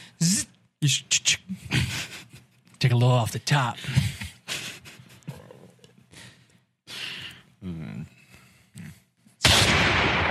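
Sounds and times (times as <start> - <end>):
speech: 0.2 - 1.6, 2.8 - 4.1
person sighing: 6.9 - 8.1
single loud gunshot from a real gun: 9.4 - 10.2.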